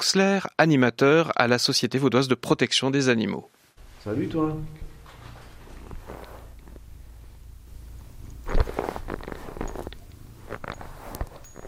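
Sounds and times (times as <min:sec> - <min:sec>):
speech: 0:00.0 - 0:04.9, 0:08.5 - 0:09.4
cat rubbing against the microphone: 0:05.0 - 0:06.9, 0:08.4 - 0:11.6
cat purring: 0:05.6 - 0:07.5, 0:08.1 - 0:11.6.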